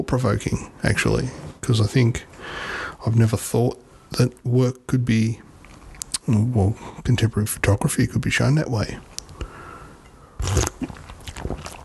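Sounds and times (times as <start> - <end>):
speech: 0.1 - 5.5, 6.3 - 9.1
sipping tea: 9.1 - 11.8
soft wet mouth and swallowing noises: 10.4 - 11.8.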